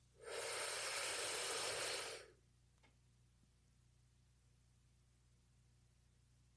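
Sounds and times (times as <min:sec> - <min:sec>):
deep breath in during a guided breathing exercise: 0:00.2 - 0:02.3.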